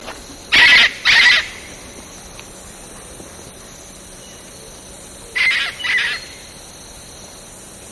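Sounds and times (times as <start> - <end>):
faint background hiss: 0.0 - 7.8
Eclectus parrot giving harsh raspy screeches in Indonesia: 0.6 - 1.6, 5.4 - 6.3.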